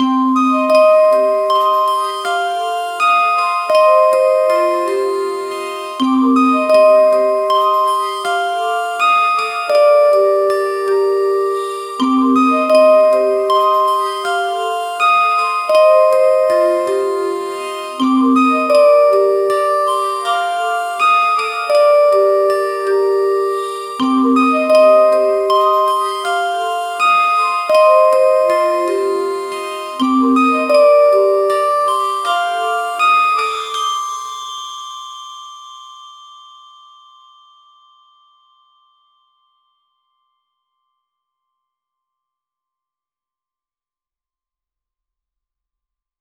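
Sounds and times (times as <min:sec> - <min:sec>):
fantasy loop on glass harmonica: 0:00.0 - 0:34.9.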